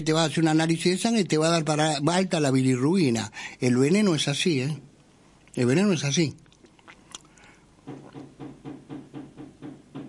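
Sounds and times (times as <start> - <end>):
speech: 0.0 - 4.9, 5.6 - 6.4
firm knocks on a door: 7.8 - 10.0.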